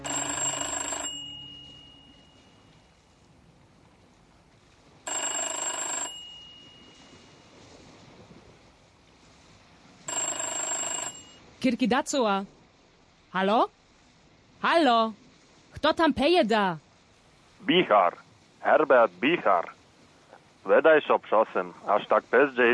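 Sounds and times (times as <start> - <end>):
telephone bell ringing: 0.0 - 2.6, 5.1 - 7.3, 10.1 - 11.4
speech: 11.6 - 12.6, 13.3 - 13.8, 14.6 - 15.2, 15.8 - 16.8, 17.6 - 19.8, 20.6 - 22.7.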